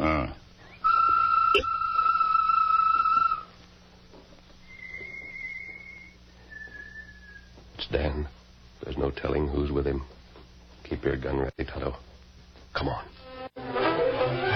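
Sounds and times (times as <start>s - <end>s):
low hum: 0.0s - 14.5s
whistled bird call imitation: 0.6s - 3.5s, 4.7s - 7.5s
speech: 9.1s - 10.2s, 10.9s - 12.1s, 12.8s - 13.2s.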